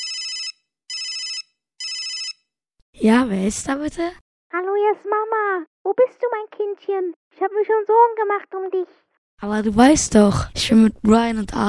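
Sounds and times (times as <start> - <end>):
telephone ringing in electronic bursts: 0.0 - 2.5
speech: 3.0 - 11.6.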